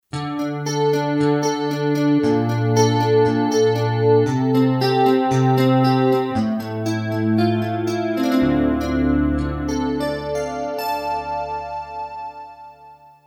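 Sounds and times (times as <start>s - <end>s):
Hyper Guitar patch on a Kurzweil K2500X synthesizer: 0.1s - 13.2s.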